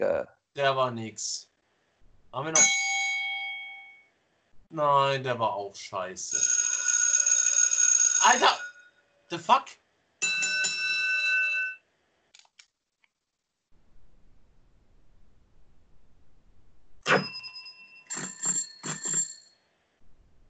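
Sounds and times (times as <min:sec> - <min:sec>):
speech: 0:00.0 - 0:01.5, 0:02.3 - 0:02.9, 0:04.7 - 0:06.6, 0:08.2 - 0:08.6, 0:09.3 - 0:09.8
bicycle bell ringing: 0:06.3 - 0:09.0, 0:10.2 - 0:11.8, 0:17.2 - 0:19.6.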